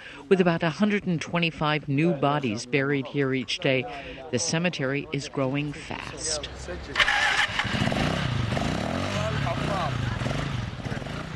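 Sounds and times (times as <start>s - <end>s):
speech: 0.2s - 7.9s
motorcycle engine starting and revving in a desert cemetery: 7.0s - 11.3s.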